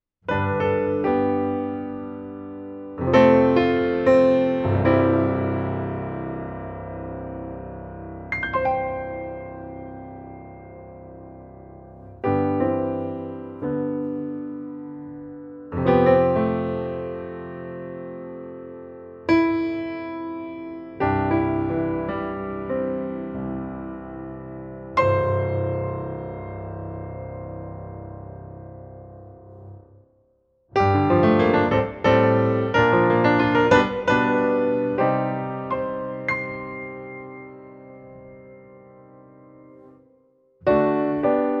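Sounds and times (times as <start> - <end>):
concert grand piano reverb: 0.3 - 41.5.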